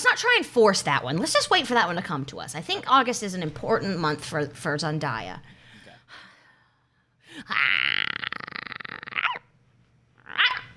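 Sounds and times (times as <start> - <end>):
speech: 0.0 - 6.2, 7.4 - 7.9
person imitating small yappy dog barking: 7.4 - 9.5, 10.2 - 10.7.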